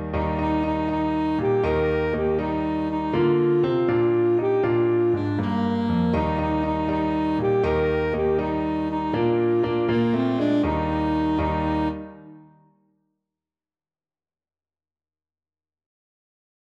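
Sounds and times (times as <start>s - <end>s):
saxophone: 0.2s - 12.6s.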